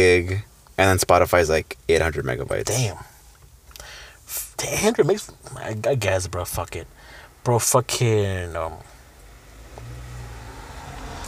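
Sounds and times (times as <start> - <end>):
speech: 0.0 - 3.1, 4.3 - 8.9
car passing by: 9.3 - 11.2.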